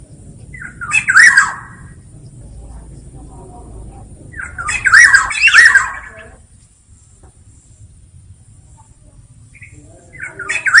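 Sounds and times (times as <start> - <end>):
low steady hum: 0.0 - 10.7
black-naped oriole squawking and singing fluty wavering notes: 0.6 - 2.0, 4.3 - 6.4, 9.6 - 10.7.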